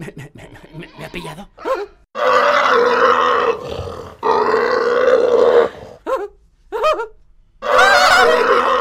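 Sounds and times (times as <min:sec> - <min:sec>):
huge pig grunting: 0:00.2 - 0:06.0
huge pig squealing: 0:00.6 - 0:05.8, 0:07.6 - 0:08.7
speech: 0:01.1 - 0:02.0.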